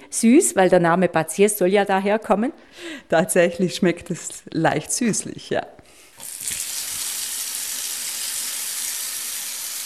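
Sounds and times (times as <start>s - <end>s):
speech: 0.0s - 5.8s
strong water jet filling a bathtub: 6.1s - 9.8s.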